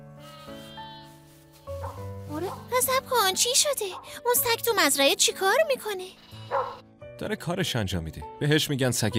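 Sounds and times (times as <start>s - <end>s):
sheep bleating on a farm: 0.2s - 1.2s
speech: 2.4s - 6.6s, 7.2s - 9.1s.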